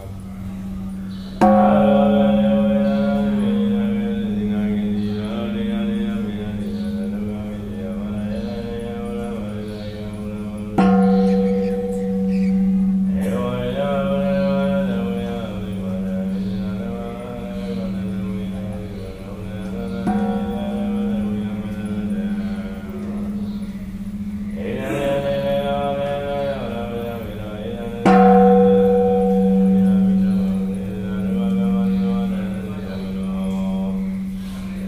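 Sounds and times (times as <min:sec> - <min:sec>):
deep ringing gongs or bells at a pagoda: 0:00.0 - 0:34.8
low steady drone: 0:00.0 - 0:34.8.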